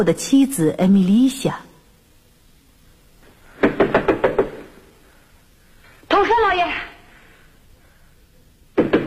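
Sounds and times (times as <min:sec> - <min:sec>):
speech: 0:00.0 - 0:01.7, 0:06.4 - 0:06.9
knocking on a door in a staged drama: 0:03.6 - 0:04.7.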